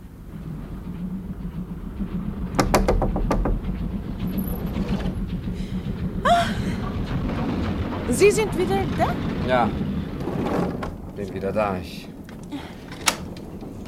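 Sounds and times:
steady low rumble of a moving train: 0:00.0 - 0:13.8
knocking on a door inside a railway carriage: 0:02.6 - 0:03.6
speech: 0:08.2 - 0:09.8, 0:11.2 - 0:12.1.

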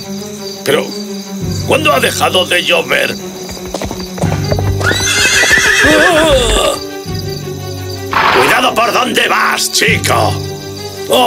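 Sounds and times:
speech: 0:00.1 - 0:03.3, 0:05.8 - 0:06.6, 0:08.7 - 0:10.5, 0:11.1 - 0:11.2
ridden horse hooves clip-clopping along a street: 0:03.0 - 0:06.8
ridden horse loud rising and falling neigh: 0:04.2 - 0:06.9, 0:08.1 - 0:08.6.

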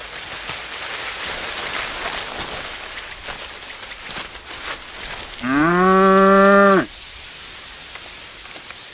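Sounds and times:
steady rain-like noise: 0:00.0 - 0:08.9
spotted cow with rope-tied horns mooing: 0:05.4 - 0:06.9.

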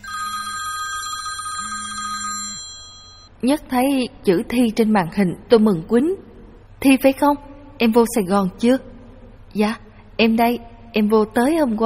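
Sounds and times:
telephone ringing with a high electronic bell tone: 0:00.0 - 0:03.3
speech: 0:03.4 - 0:06.2, 0:06.8 - 0:08.9, 0:09.5 - 0:11.8.

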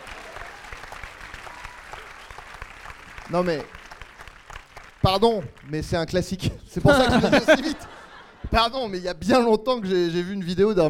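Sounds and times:
applause from a small group: 0:00.0 - 0:06.4
speech: 0:03.3 - 0:03.8, 0:05.0 - 0:07.9, 0:08.5 - 0:10.8
laughter: 0:06.8 - 0:08.8.

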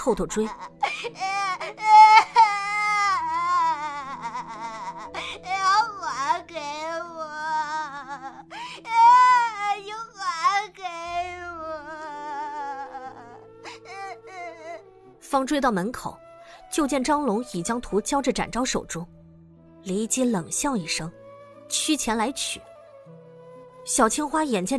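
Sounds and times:
speech: 0:00.0 - 0:02.1, 0:15.3 - 0:19.2, 0:19.8 - 0:22.7, 0:23.9 - 0:24.7
voice imitating a child wailing and crying: 0:00.3 - 0:14.9.

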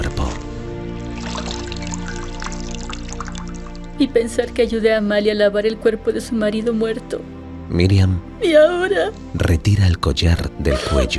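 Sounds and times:
soapy water poured from a large jug into a bowl: 0:00.2 - 0:04.0
speech: 0:04.0 - 0:11.1.

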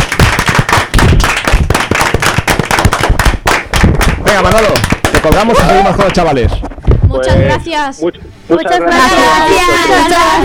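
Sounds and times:
group applauding: 0:00.0 - 0:06.4
speech: 0:04.4 - 0:10.4.

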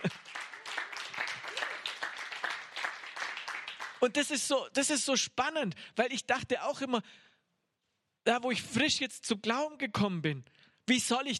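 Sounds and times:
audience clapping at a Christian teaching gathering: 0:00.0 - 0:04.2
speech: 0:04.0 - 0:07.3, 0:08.2 - 0:11.3.

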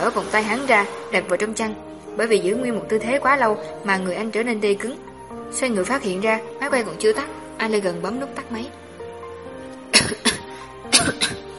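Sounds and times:
speech: 0:00.1 - 0:08.8
man lying on a sofa coughing violently: 0:10.0 - 0:11.4.

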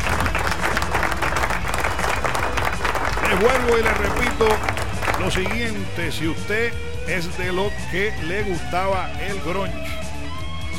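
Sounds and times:
crowd applauding: 0:00.0 - 0:06.0
speech: 0:03.4 - 0:10.1.

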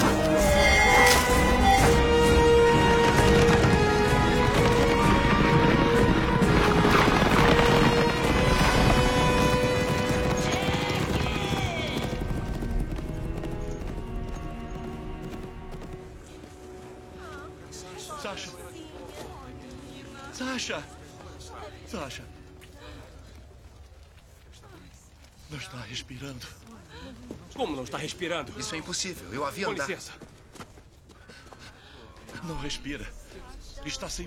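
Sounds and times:
dense tonal film soundtrack: 0:00.0 - 0:24.0
horses galloping: 0:00.0 - 0:34.2
speech: 0:27.8 - 0:30.3, 0:32.4 - 0:33.2, 0:33.8 - 0:34.2.

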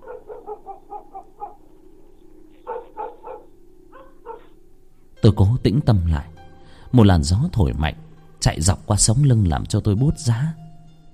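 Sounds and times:
dogs barking in the distance from a village: 0:00.0 - 0:05.2
speech: 0:05.2 - 0:10.6.

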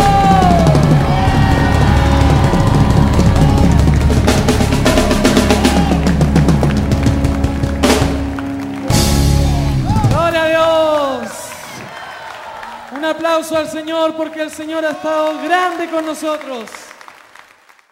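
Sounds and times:
continuous driving worship music: 0:00.0 - 0:10.6
congregation shouting for joy during a live worship service: 0:00.0 - 0:16.6
speech: 0:13.4 - 0:16.8.

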